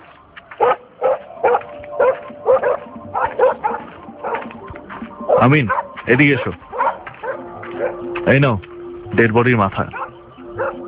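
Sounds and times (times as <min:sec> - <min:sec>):
violent pet dog barking near a dog house: 0:00.6 - 0:04.5, 0:05.3 - 0:08.0, 0:09.9 - 0:10.8
speech: 0:05.4 - 0:06.7, 0:08.2 - 0:10.0.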